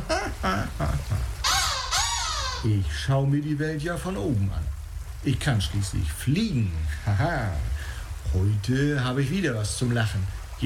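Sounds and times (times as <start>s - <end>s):
black-headed gull calling: 0.0s - 2.9s
speech: 2.6s - 10.6s.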